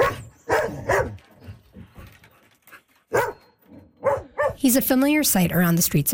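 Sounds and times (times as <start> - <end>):
dog barking: 0.0 - 1.2, 3.1 - 3.4, 4.0 - 4.6
speech: 4.6 - 6.1.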